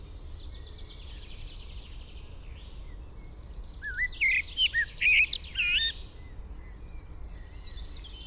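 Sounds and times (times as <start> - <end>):
Common blackbird Turdus merula whistling and twittering: 3.8 - 6.0.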